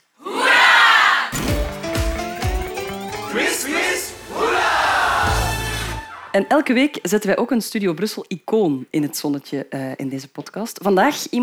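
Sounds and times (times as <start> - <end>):
live quiz audience cheering and shouting: 0.2 - 1.4, 2.8 - 6.4
short bright musical sting: 1.4 - 6.8
speech: 6.3 - 11.4.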